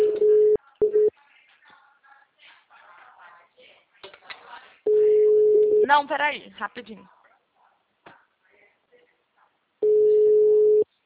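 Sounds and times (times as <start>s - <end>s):
telephone call tone while a call is being placed: 0.0s - 1.1s, 4.9s - 5.8s, 9.8s - 10.8s
speech: 5.9s - 7.2s.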